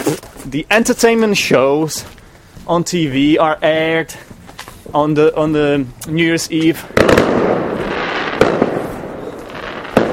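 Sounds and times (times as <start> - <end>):
fireworks going off outside: 0.0 - 10.1
speech: 0.1 - 4.3, 4.9 - 7.5
sharp fireworks bangs: 6.3 - 10.1.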